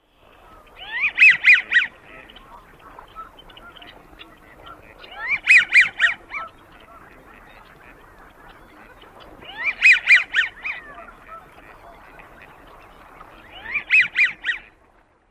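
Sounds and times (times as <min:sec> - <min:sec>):
male American Wigeon calls: 0:00.2 - 0:14.9.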